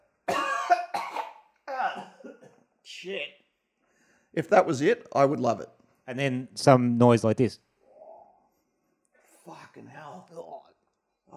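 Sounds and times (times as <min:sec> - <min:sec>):
harsh voiced coughs: 0:00.3 - 0:02.7
speech: 0:02.9 - 0:03.4, 0:04.3 - 0:07.6, 0:09.5 - 0:10.6.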